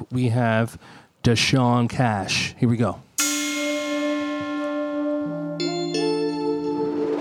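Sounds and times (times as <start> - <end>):
speech: 0.1 - 3.1
bell-like chimes in a music track: 3.2 - 6.9
sustained steady musical notes: 3.2 - 7.1.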